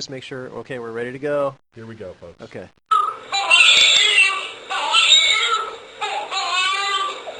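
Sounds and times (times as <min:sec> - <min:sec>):
speech: 0:00.0 - 0:02.8
infant screaming and crying during circumcision: 0:03.0 - 0:07.3.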